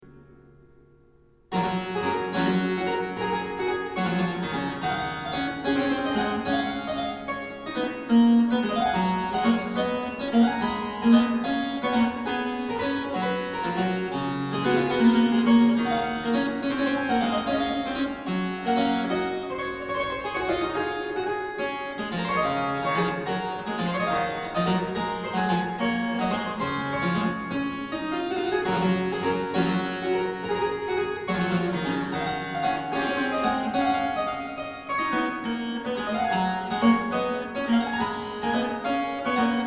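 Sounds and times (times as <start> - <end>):
Baroque harpsichord variation: 1.5 - 39.6.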